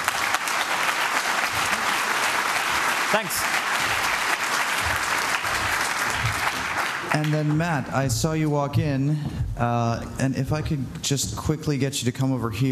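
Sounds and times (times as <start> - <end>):
steady dense applause from a crowd: 0.0 - 8.0
speech: 3.1 - 3.6, 7.1 - 12.7.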